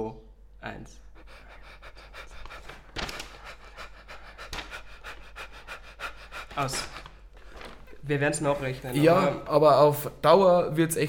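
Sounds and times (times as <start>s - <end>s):
speech: 0.0s - 1.1s, 6.6s - 6.9s, 8.1s - 11.0s
fast rhythmic panting breaths: 1.0s - 8.1s.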